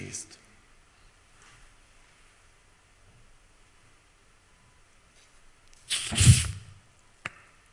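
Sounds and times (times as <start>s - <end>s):
water bottle twisted open releasing escaping air: 5.8s - 6.8s.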